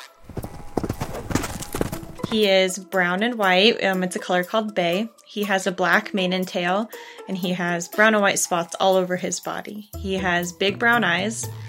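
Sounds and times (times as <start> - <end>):
brown and white miniature horse hooves clip-clopping on a hard surface: 0.0 - 2.4
speech: 2.3 - 11.6.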